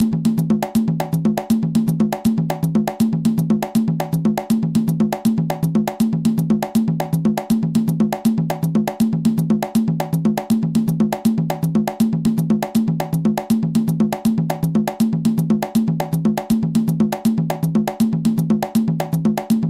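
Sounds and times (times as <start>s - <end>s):
tumba drum playing columbia matanzas: 0.0s - 19.6s.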